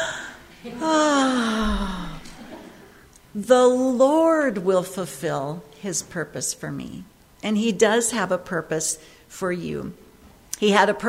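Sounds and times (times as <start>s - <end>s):
group taking a deep breath together: 0.0s - 0.6s, 1.4s - 3.1s
speech: 0.6s - 1.1s, 3.4s - 10.0s, 10.6s - 11.0s.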